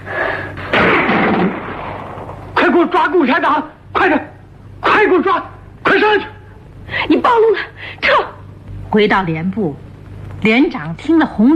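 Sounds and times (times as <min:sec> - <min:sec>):
low hiss: 0:00.0 - 0:11.5
single gunshot in a radio drama: 0:00.7 - 0:02.4
speech: 0:02.8 - 0:04.3, 0:05.2 - 0:06.3, 0:08.9 - 0:11.5.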